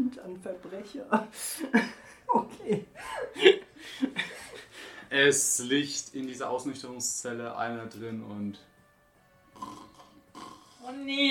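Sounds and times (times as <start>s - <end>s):
speech: 0.4s - 2.0s, 5.2s - 8.7s, 11.0s - 11.2s
laughter: 1.6s - 5.0s
person imitating snoring: 9.6s - 11.0s.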